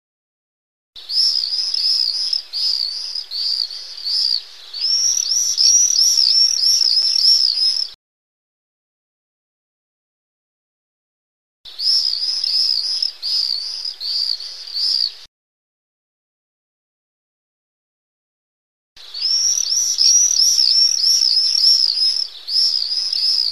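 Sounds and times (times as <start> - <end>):
pair of common swifts screaming: 1.0 - 8.0, 11.7 - 15.3, 19.0 - 23.5.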